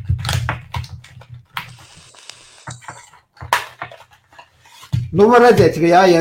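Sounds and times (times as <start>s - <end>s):
paper packaging of a vape device torn open: 1.6s - 2.7s
speech: 5.1s - 6.1s.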